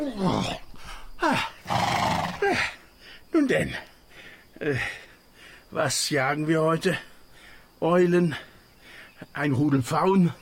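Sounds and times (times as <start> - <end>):
speech: 0.0 - 1.5, 3.4 - 3.9, 4.6 - 5.0, 5.7 - 7.1, 7.8 - 8.5, 9.2 - 10.4
royal horse neighing as a king mounts it for a hunt: 1.2 - 2.7.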